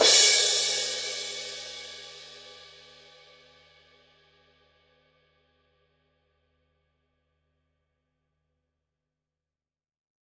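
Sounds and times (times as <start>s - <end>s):
Signature Precision 18 thin crash cymbal edge hit: 0.0s - 2.5s.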